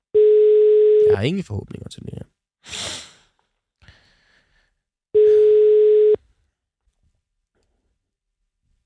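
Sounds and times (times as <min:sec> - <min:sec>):
telephone ringback tone: 0:00.2 - 0:01.0, 0:05.2 - 0:06.2
speech: 0:01.1 - 0:02.9.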